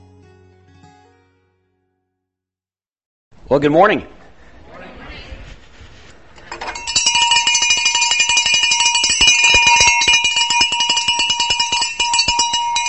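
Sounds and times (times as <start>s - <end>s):
speech: 3.5s - 4.2s
hand bell rung out front of a house to call children for dinner: 6.5s - 12.8s.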